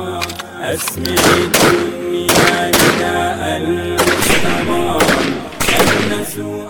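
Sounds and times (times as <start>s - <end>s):
gunfire from soldiers in training shooting at raised targets: 0.2s - 3.3s, 4.0s - 6.5s.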